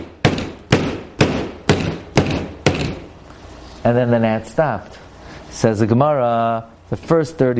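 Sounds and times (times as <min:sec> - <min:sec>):
banging imitating a blacksmith hammering metal: 0:00.0 - 0:03.1
speech: 0:03.8 - 0:07.5.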